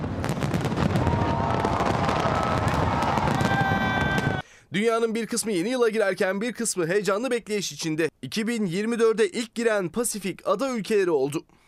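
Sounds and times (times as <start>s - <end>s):
fireworks display crackling and booming: 0.0s - 4.4s
whistling firework rockets rising: 0.0s - 4.4s
crowd cheering: 0.7s - 4.4s
speech: 4.8s - 11.6s.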